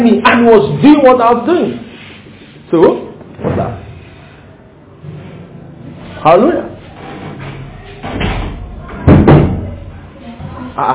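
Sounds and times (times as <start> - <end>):
speech: 0.0 - 1.9, 2.7 - 3.8, 6.2 - 6.7, 10.8 - 10.9
door opening and being pushed shut: 6.9 - 9.8.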